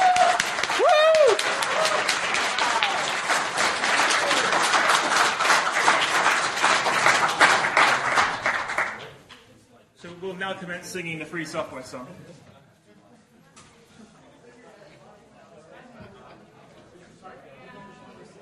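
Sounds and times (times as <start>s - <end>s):
room full of people applauding: 0.0s - 9.2s
speech: 10.5s - 12.4s.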